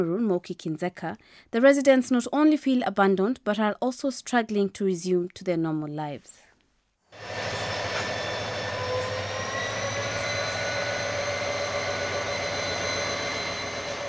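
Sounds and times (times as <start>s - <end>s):
speech: 0.0s - 6.4s, 7.1s - 7.6s
high whining metallic tones of intercity train: 7.2s - 14.0s
intercity train deep engine drone: 7.2s - 14.0s
intercity train passing through crashed train wreckage at Eseka Cameroon: 7.2s - 14.0s.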